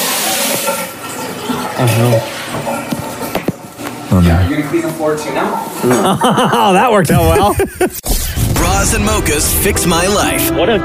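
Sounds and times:
hot water spraying from plumbing under a sink: 0:00.0 - 0:01.4
speech: 0:01.8 - 0:03.0, 0:04.2 - 0:08.0, 0:08.9 - 0:10.8
laughter: 0:05.8 - 0:08.0.

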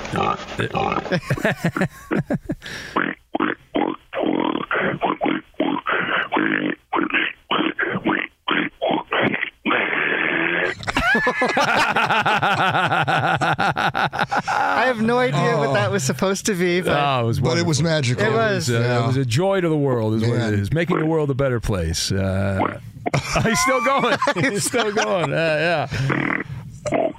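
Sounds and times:
person imitating pig grunts, snorts and oinks: 0:00.1 - 0:01.2, 0:03.0 - 0:10.8, 0:25.2 - 0:27.1
speech: 0:00.1 - 0:03.5, 0:11.3 - 0:26.4
laughter: 0:00.6 - 0:02.6, 0:10.7 - 0:16.0, 0:23.1 - 0:26.3.

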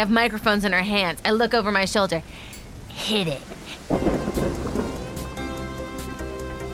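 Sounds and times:
speech: 0:00.0 - 0:04.6
steady downpour of rain: 0:02.2 - 0:06.7
deep rumble of thunder: 0:03.3 - 0:06.7.

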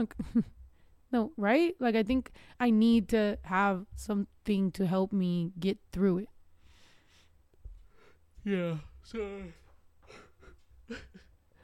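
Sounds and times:
speech: 0:00.0 - 0:06.3, 0:08.4 - 0:10.2, 0:10.9 - 0:11.3
person yawning: 0:08.5 - 0:09.6.

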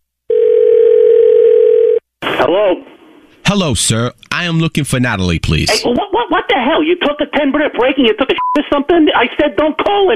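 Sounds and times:
telephone dial tone after hang-up: 0:00.3 - 0:02.0
speech: 0:03.5 - 0:10.1.

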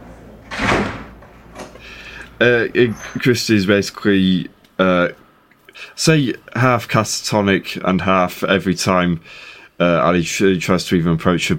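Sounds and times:
door closing behind someone leaving: 0:00.0 - 0:02.0
speech: 0:02.4 - 0:05.2, 0:05.8 - 0:11.5.

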